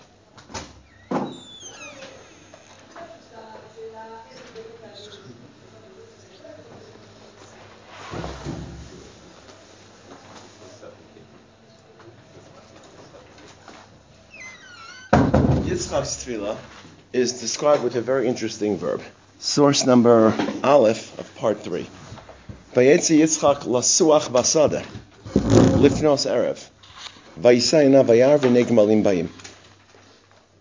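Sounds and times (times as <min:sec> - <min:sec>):
door pushed shut with a short solid thud and rattle: 0:01.1 - 0:02.0, 0:15.0 - 0:15.9, 0:25.3 - 0:26.0
speech: 0:15.9 - 0:22.0, 0:22.8 - 0:25.0, 0:25.8 - 0:26.8, 0:27.4 - 0:29.4.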